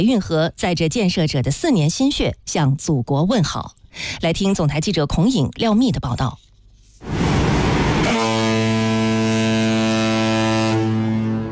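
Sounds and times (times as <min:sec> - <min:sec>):
speech: 0:00.0 - 0:06.4
brief rush of broadband noise: 0:07.0 - 0:08.2
5000-tonne cargo ship horn blast: 0:07.0 - 0:11.4.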